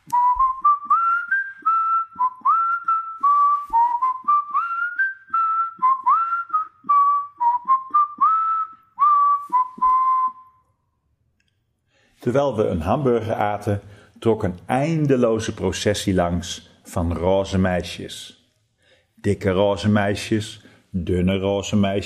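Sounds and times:
person whistling a bright melody: 0:00.0 - 0:10.8
speech: 0:12.3 - 0:18.4, 0:19.2 - 0:22.0.

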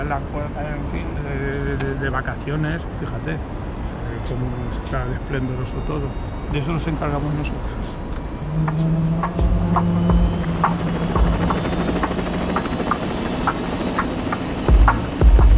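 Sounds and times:
speech: 0:00.0 - 0:07.9, 0:08.6 - 0:11.5
helicopter low engine drone: 0:00.0 - 0:15.5
helicopter rotor blades thumping: 0:08.2 - 0:15.5.

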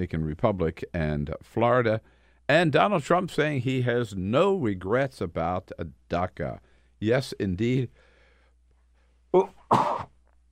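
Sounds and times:
speech: 0:00.0 - 0:08.0, 0:09.3 - 0:10.1
broadcaster sneezing on the air: 0:09.4 - 0:10.2.

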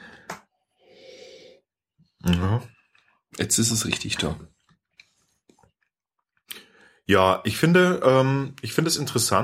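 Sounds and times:
faint soft breath: 0:00.0 - 0:01.7
person sniffing beer aroma from a glass: 0:00.8 - 0:01.6
speech: 0:02.2 - 0:04.6, 0:07.1 - 0:09.4.

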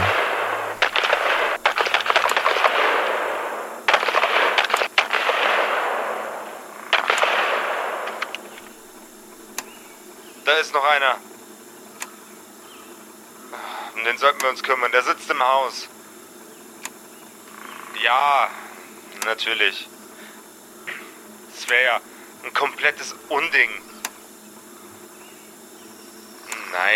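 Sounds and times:
warbling whine: 0:00.0 - 0:01.7
gunshots: 0:00.0 - 0:08.6
rapid machine-gun fire: 0:00.0 - 0:09.1
speech: 0:10.6 - 0:11.3, 0:14.0 - 0:16.0, 0:18.0 - 0:18.6, 0:19.2 - 0:19.9, 0:21.7 - 0:23.9.

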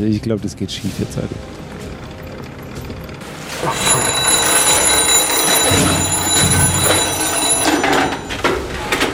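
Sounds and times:
speech: 0:00.0 - 0:01.6
telephone ringing with a bright electronic trill: 0:03.3 - 0:09.0.

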